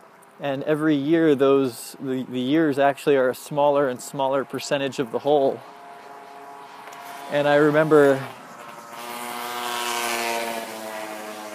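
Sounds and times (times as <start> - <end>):
speech: 0.4 - 5.8, 7.3 - 8.4
small two-stroke scooter engine buzzing as it passes: 4.4 - 11.5.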